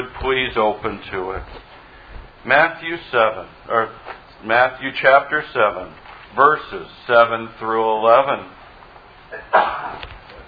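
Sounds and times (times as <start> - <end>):
speech: 0.2 - 1.7, 2.4 - 8.6, 9.3 - 10.1
sneeze during a church sermon: 9.3 - 10.1.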